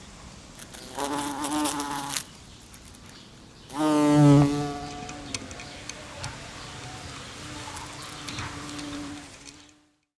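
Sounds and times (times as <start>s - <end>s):
house fly wing buzz: 0.6s - 5.8s, 7.1s - 9.9s.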